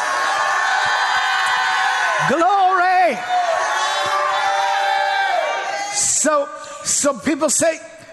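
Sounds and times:
audience shouting and cheering: 0.0 - 6.5
speech: 2.2 - 2.6, 7.0 - 8.0.

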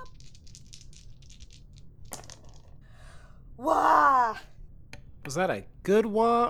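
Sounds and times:
four dice tumbling and clattering on a table: 0.0 - 2.8
speech: 3.6 - 4.5, 5.3 - 6.4.

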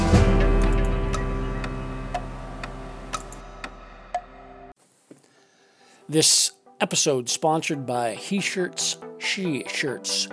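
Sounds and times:
clock ticking: 0.0 - 4.7
speech: 6.1 - 10.3.

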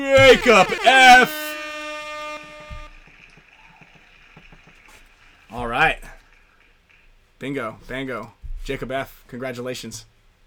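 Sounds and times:
speech: 0.0 - 1.4, 5.5 - 6.1, 7.4 - 10.1
loud brassy air horn blast: 0.0 - 3.1.

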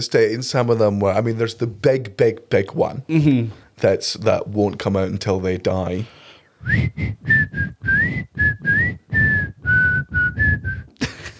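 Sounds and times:
speech: 0.0 - 10.8
person whistling a tune: 6.6 - 10.9.

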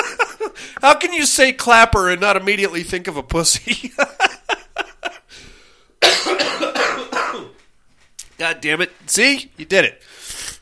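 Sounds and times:
laughter: 0.0 - 0.8, 3.6 - 5.3
speech: 0.8 - 4.2, 8.6 - 10.1
raspy wheezing breath: 5.3 - 6.0, 10.0 - 10.6
person in a coughing fit: 6.0 - 7.6.

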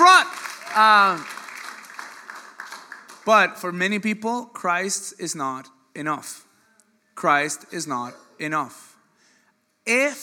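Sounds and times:
audience applause: 0.0 - 3.4
speech: 0.8 - 1.4, 3.2 - 6.5, 7.2 - 8.9, 9.8 - 10.2.

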